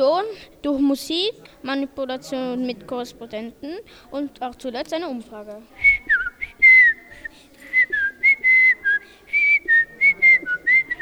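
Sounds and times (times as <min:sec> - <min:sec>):
speech: 0:00.0 - 0:05.9
person whistling a lively melody: 0:05.9 - 0:11.0.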